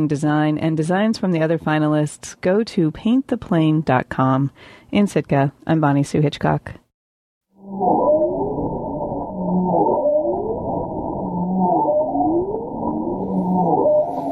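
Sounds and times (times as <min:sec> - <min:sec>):
speech: 0:00.0 - 0:06.8, 0:07.7 - 0:08.0
bowhead whale calls recorded underwater: 0:07.6 - 0:14.2
steady underwater rumbling background: 0:07.6 - 0:14.2.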